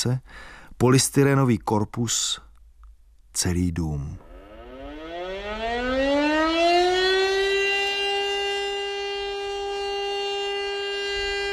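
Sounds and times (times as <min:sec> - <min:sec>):
speech: 0:00.0 - 0:02.5, 0:03.4 - 0:04.3
fire alarm siren sounded to call out firefighters: 0:04.2 - 0:11.5.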